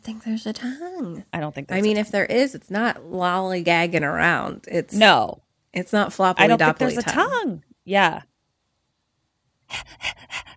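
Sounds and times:
speech: 0:00.1 - 0:08.3, 0:09.7 - 0:10.4
voice imitating a crocodile panting: 0:09.7 - 0:10.5.

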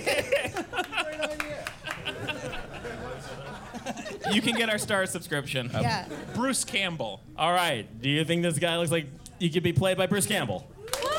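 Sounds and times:
laughter: 0:00.0 - 0:06.7
small audience clapping: 0:00.6 - 0:02.6, 0:10.8 - 0:11.1
speech: 0:04.3 - 0:10.7.

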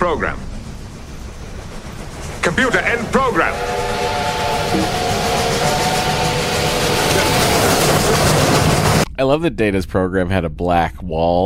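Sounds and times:
steam locomotive rumbling and hissing: 0:00.0 - 0:09.1
speech: 0:00.1 - 0:00.5, 0:02.4 - 0:04.0, 0:09.2 - 0:11.4
steam locomotive whistle: 0:03.1 - 0:08.6.

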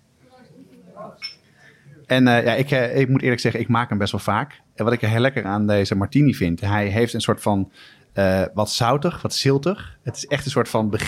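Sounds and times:
martini glasses clinking in a toast: 0:01.2 - 0:01.5
speech: 0:02.1 - 0:11.0.

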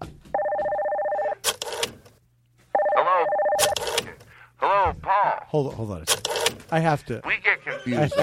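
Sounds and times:
loud telephone ringing with electronic trill: 0:00.4 - 0:01.8, 0:02.7 - 0:04.2
speech: 0:05.5 - 0:08.2
laughter: 0:07.4 - 0:08.2.

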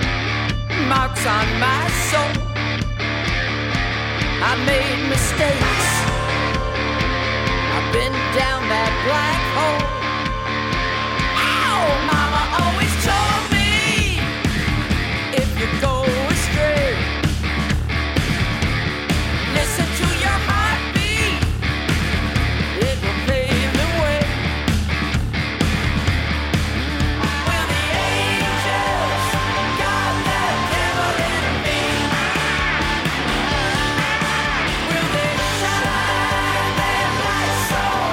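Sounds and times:
heavy metal track with distorted guitars and pounding drums: 0:00.0 - 0:38.1
speech: 0:00.9 - 0:02.8, 0:04.4 - 0:06.1, 0:08.0 - 0:10.0
harsh screamed vocals: 0:04.6 - 0:14.4, 0:26.8 - 0:38.1.

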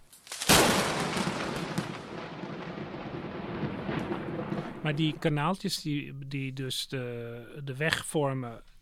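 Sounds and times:
thunderclap from a lightning strike with a sharp crack and heavy rumble: 0:00.5 - 0:06.1
speech: 0:04.8 - 0:08.7.

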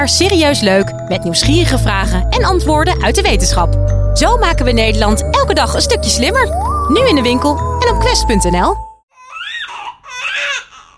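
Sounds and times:
speech: 0:00.0 - 0:08.8
newborn baby crying: 0:09.1 - 0:10.9.

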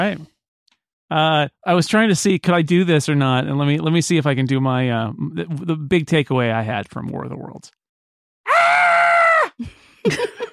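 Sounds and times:
speech: 0:00.0 - 0:00.3, 0:01.1 - 0:07.8, 0:09.6 - 0:10.4
person imitating a frightened girl's high-pitched scream: 0:08.5 - 0:09.6.

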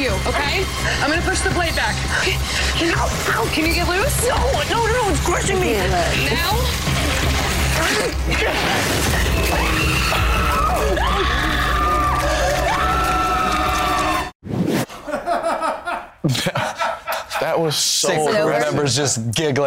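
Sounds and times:
dense chaotic din: 0:00.0 - 0:14.3
speech: 0:00.2 - 0:11.6, 0:17.4 - 0:19.6
overlapping screams in a played recording: 0:07.7 - 0:14.3
laughter: 0:15.0 - 0:18.1.

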